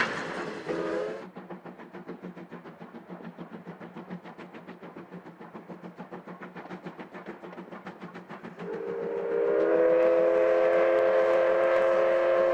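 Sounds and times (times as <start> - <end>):
C12 steam locomotive hauling a train with exhaust chuffing: 0.0 - 12.5
steam locomotive whistle blast: 0.6 - 1.2, 8.6 - 12.5.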